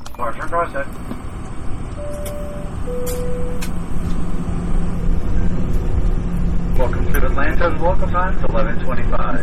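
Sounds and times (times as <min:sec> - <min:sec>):
steady low drone of an airplane cabin in flight to Atlanta: 0:00.0 - 0:09.4
people talking: 0:00.1 - 0:01.0, 0:06.8 - 0:09.4
two-tone chime for a flight attendant's announcement: 0:02.0 - 0:03.6.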